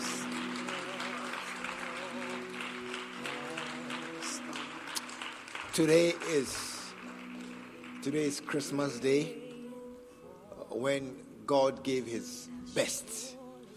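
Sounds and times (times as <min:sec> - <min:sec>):
congregation clapping in a large room: 0:00.0 - 0:09.8
speech: 0:05.8 - 0:06.7, 0:08.0 - 0:09.4, 0:10.8 - 0:13.4.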